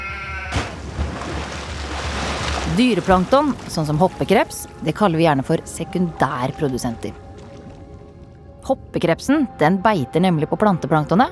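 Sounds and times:
sheep bleating: 0:00.0 - 0:00.8
speech: 0:02.7 - 0:07.2, 0:08.7 - 0:11.3.

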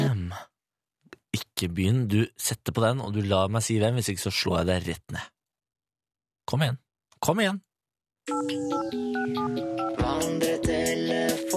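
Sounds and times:
speech: 0:01.6 - 0:05.4, 0:06.5 - 0:11.2
bright electronic ringtone melody of stepped beeping notes: 0:08.3 - 0:11.5.

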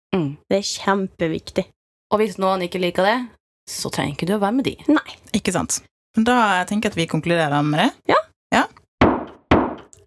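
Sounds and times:
speech: 0:00.1 - 0:08.7
firm knocks on a wooden table: 0:09.0 - 0:09.9.

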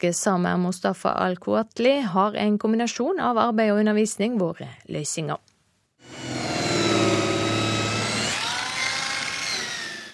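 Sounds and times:
speech: 0:00.0 - 0:05.4
sanding machine whirring on wooden garage door parts in Eid, Sogn og Fjordane, Norway: 0:06.0 - 0:10.1.

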